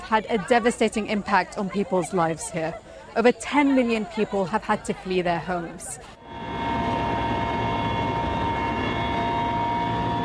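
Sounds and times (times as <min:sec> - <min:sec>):
speech: 0:00.1 - 0:06.2
helicopter in flight engine drone: 0:06.2 - 0:10.2.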